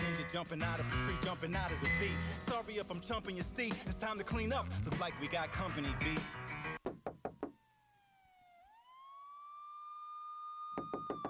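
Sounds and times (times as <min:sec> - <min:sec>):
speech: 0:00.3 - 0:06.8
loud rapid knocking on a door: 0:06.8 - 0:07.6, 0:10.8 - 0:11.2
wailing siren-like tone: 0:07.4 - 0:11.2.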